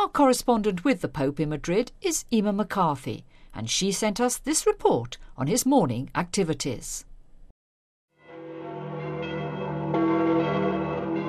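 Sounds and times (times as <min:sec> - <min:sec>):
speech: 0:00.0 - 0:07.1
church bells pealing: 0:08.2 - 0:11.2.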